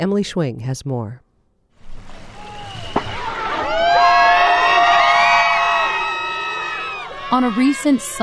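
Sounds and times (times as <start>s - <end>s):
speech: 0.0s - 1.2s, 7.3s - 8.2s
large outdoor crowd cheering at a walrus skin boat race on the Bering Sea: 1.9s - 8.2s.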